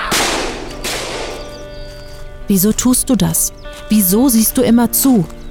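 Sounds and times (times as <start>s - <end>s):
loud gunshots echoing in a courtyard: 0.1s - 1.4s
speech: 2.5s - 5.4s.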